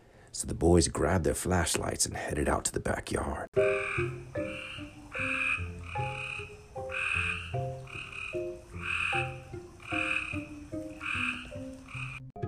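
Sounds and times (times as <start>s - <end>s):
speech: 0.4s - 5.7s
bioluminescent frogs croaking in chorus at night: 3.6s - 12.3s.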